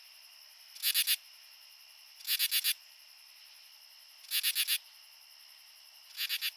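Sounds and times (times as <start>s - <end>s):
continuous high-pitched insect drone: 0.0s - 1.2s, 2.2s - 6.5s
male common true katydid calling with raspy pulses: 2.2s - 2.8s, 4.2s - 4.8s, 6.1s - 6.5s.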